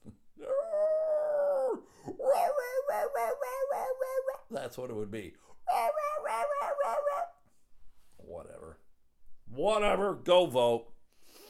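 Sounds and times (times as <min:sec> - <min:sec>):
person imitating a beaver howling at the moon: 0:00.4 - 0:04.5, 0:05.7 - 0:07.4
speech: 0:04.6 - 0:05.9, 0:09.6 - 0:10.9.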